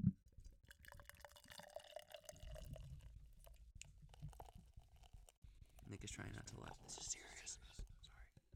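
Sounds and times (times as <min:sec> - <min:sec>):
beer pouring into a glass with fizz: 0:00.7 - 0:03.5, 0:04.1 - 0:07.1
speech: 0:05.9 - 0:07.8.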